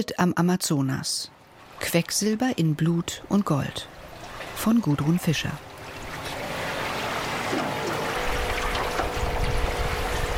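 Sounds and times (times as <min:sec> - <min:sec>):
speech: 0:00.0 - 0:04.0, 0:04.6 - 0:05.7
rushing, splashing water of the Rio Tapachos: 0:01.4 - 0:10.3
narrow motorboat engine drone on the Rio Tapachos: 0:03.1 - 0:10.3.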